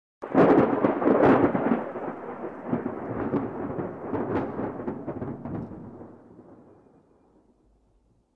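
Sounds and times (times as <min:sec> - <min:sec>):
light thunder crack and rumble: 0:00.2 - 0:08.3.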